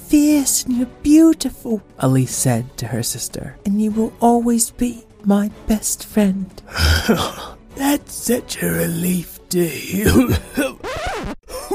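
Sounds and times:
speech: 0.1 - 10.8
voice imitating a bear coughing up a crystal ball: 6.7 - 7.5, 10.0 - 10.8, 11.5 - 11.7.

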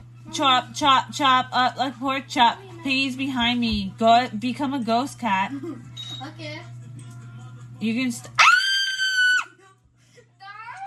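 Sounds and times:
speech: 0.3 - 6.8, 7.8 - 8.5
child screaming: 8.4 - 9.5.

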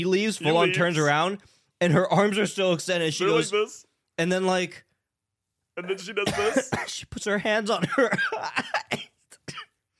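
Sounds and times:
speech: 0.0 - 4.9, 5.8 - 9.1
raspy dry coughs from a dry throat: 6.2 - 7.0, 7.8 - 9.9
person laughing: 7.9 - 9.0.

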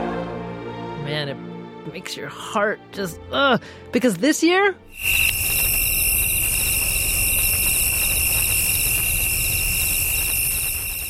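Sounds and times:
speech: 1.1 - 5.3
crickets chirping: 4.9 - 11.0.

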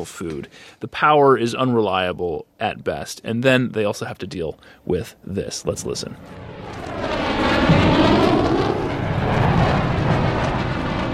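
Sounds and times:
speech: 0.0 - 8.0
Russian warplanes flying overhead with rumbling jet roar: 5.7 - 11.1.

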